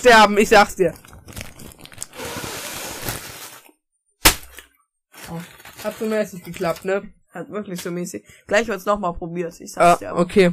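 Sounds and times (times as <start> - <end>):
speech: 0.0 - 1.1, 5.3 - 10.5
paper bakery bag crinkling as it is squeezed: 0.6 - 3.8, 4.5 - 6.9
paper bakery bag bursting with a pop: 1.0 - 6.9.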